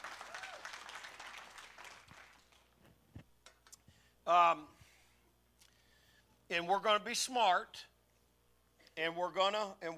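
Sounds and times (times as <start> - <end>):
audience applause: 0.0 - 2.7
speech: 4.3 - 4.8, 6.5 - 7.9, 9.0 - 9.9.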